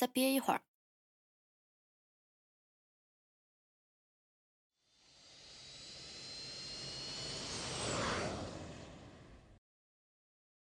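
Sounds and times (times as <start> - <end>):
speech: 0.0 - 0.7
high jet engine whine: 4.8 - 9.6
airplane jet engines roaring during takeoff: 5.6 - 9.6.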